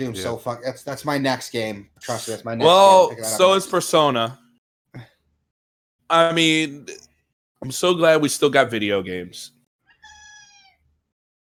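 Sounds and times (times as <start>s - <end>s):
speech: 0.0s - 4.4s, 6.1s - 9.6s
female cat meowing loudly: 10.0s - 10.8s.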